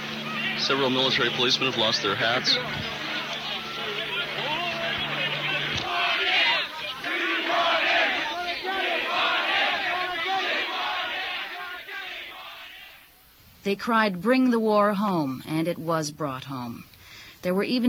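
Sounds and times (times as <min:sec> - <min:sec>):
low engine-like hum: 0:00.0 - 0:05.7
large protest crowd yelling and chanting during a street clash: 0:00.0 - 0:13.1
speech: 0:00.6 - 0:03.0, 0:13.6 - 0:17.8.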